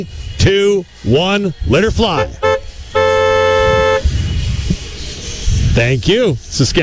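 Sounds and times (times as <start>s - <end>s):
speech: 0.0s - 2.4s, 5.8s - 6.8s
low rumbling background of traffic noise: 0.0s - 6.8s
car horns honked by fans after a football game: 2.1s - 4.1s.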